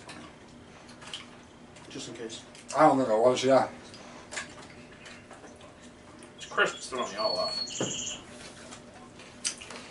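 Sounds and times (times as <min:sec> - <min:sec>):
quiet steady outdoor hum: 0:00.0 - 0:09.8
speech: 0:02.0 - 0:03.9, 0:06.6 - 0:08.2
short high bird chirps: 0:06.4 - 0:08.2.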